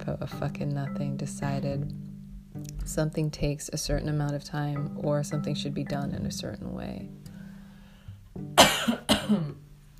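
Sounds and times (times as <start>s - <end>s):
speech: 0.0s - 7.3s, 9.3s - 9.6s
person coughing: 8.6s - 9.6s.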